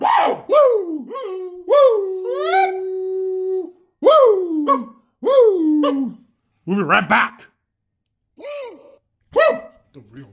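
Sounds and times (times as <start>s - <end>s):
wolf howling: 0.0s - 6.2s
speech: 6.7s - 7.5s.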